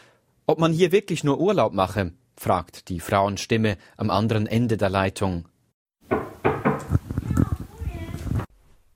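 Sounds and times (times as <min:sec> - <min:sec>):
speech: 0:00.5 - 0:05.5
knocking on a hotel room door: 0:06.1 - 0:07.0.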